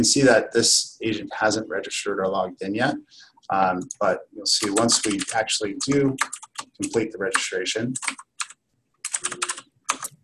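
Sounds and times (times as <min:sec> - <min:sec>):
speech: 0:00.0 - 0:08.3
typing on a computer keyboard: 0:04.6 - 0:05.4, 0:06.1 - 0:10.2.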